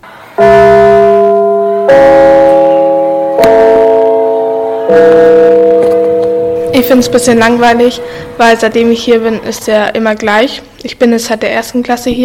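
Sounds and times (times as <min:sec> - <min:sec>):
school gong ringing at a school in Essingen: 0:00.4 - 0:09.4
speech: 0:04.9 - 0:05.1, 0:06.8 - 0:12.2.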